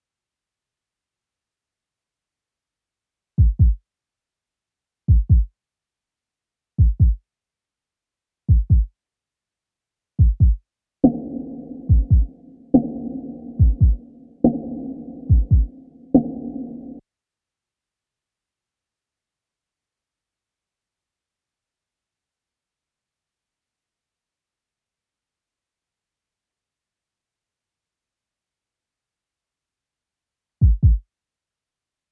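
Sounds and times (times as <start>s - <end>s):
drums loop: 3.4s - 3.8s, 5.1s - 5.5s, 6.8s - 7.2s, 8.5s - 8.9s, 10.2s - 17.0s, 30.6s - 31.0s.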